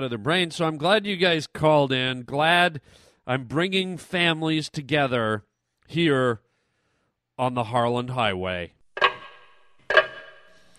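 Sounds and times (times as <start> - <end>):
speech: 0.0 - 6.5, 7.4 - 8.8
clock ticking with a metallic ring: 9.0 - 10.7.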